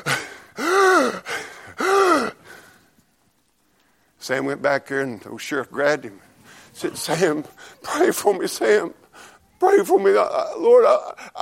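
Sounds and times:
person imitating a sheriff's labored ragged breathing: 0:00.0 - 0:02.8
speech: 0:04.3 - 0:09.0, 0:09.6 - 0:11.4.

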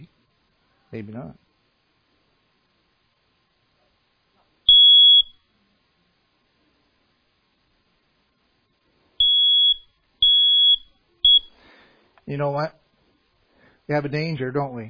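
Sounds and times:
speech: 0:00.9 - 0:01.5, 0:12.3 - 0:12.8, 0:13.9 - 0:14.8
home smoke alarm beeping as a demonstration: 0:04.7 - 0:05.4, 0:09.2 - 0:11.6.

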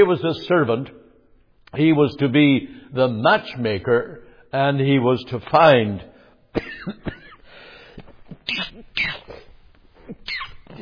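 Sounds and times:
speech: 0:00.0 - 0:01.0, 0:01.7 - 0:07.2, 0:08.5 - 0:09.3, 0:10.1 - 0:10.7
person coughing: 0:06.6 - 0:07.4, 0:08.4 - 0:10.7
throaty breathing: 0:07.4 - 0:08.2.

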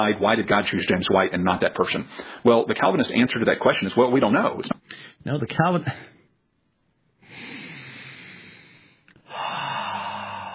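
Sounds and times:
speech: 0:00.0 - 0:06.1
slow deep breathing: 0:02.1 - 0:02.5, 0:04.8 - 0:05.2, 0:07.2 - 0:10.5.

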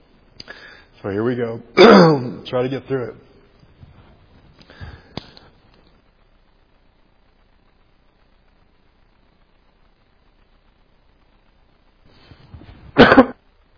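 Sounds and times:
speech: 0:01.0 - 0:03.2
preacher with allergies clearing throat during a sermon: 0:01.8 - 0:02.3, 0:13.0 - 0:13.4
preacher with allergies coughing during a sermon: 0:01.8 - 0:02.3, 0:13.0 - 0:13.4.

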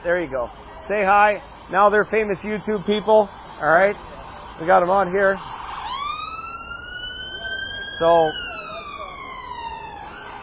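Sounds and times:
speech: 0:00.0 - 0:05.6, 0:08.0 - 0:08.4
emergency vehicle siren passing along a city street in England: 0:02.8 - 0:10.4.

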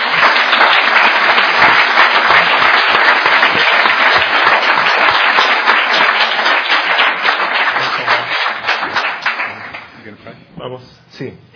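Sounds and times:
audience applause: 0:00.0 - 0:10.0
speech: 0:10.7 - 0:11.5.

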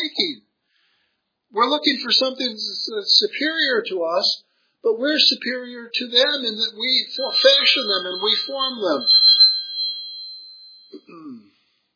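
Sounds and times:
speech: 0:01.5 - 0:09.2
mobile phone ringing: 0:07.0 - 0:11.0.

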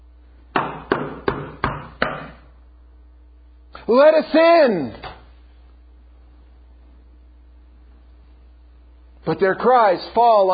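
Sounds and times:
knocking on a door: 0:00.6 - 0:02.4
speech: 0:03.9 - 0:05.0, 0:09.3 - 0:10.5.

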